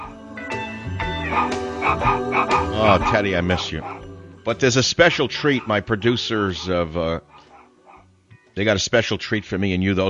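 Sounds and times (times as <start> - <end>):
Christmas tune musical backing: 0.0 - 8.8
dog barking set to a Christmas tune: 1.3 - 4.0, 7.3 - 8.0
speech: 1.4 - 7.4, 8.6 - 10.0.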